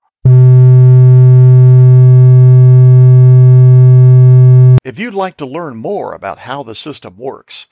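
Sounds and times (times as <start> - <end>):
repeater access tone from a radio transceiver, low steady buzzing hum: 0.3 - 4.8
speech: 5.2 - 7.6.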